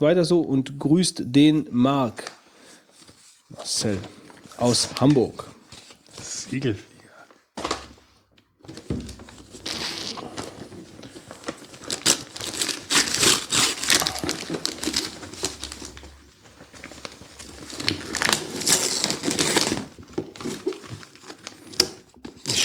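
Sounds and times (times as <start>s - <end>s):
speech: 0.0s - 2.4s, 3.5s - 5.6s, 6.5s - 6.9s
wrapping paper being torn off a package: 9.4s - 16.2s, 16.8s - 22.6s.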